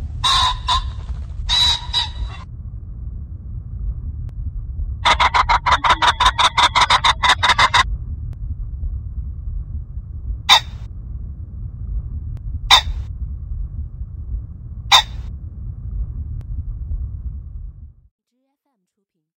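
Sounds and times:
low hum: 0.0 - 18.1
common pheasant harsh calls at Baiyangdian: 0.2 - 2.4, 5.0 - 7.8, 10.5 - 10.8, 14.9 - 15.2.

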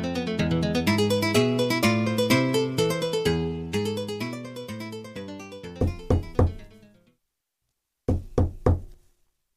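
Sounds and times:
lively instrumental music: 0.0 - 7.1
firm knocking on a door: 5.8 - 6.7, 8.1 - 9.0.

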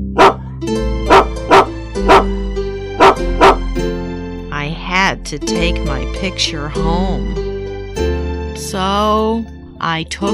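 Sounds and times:
dog barking: 0.2 - 0.5, 1.1 - 2.3, 3.0 - 3.6
speech: 5.3 - 7.5, 8.6 - 10.3.

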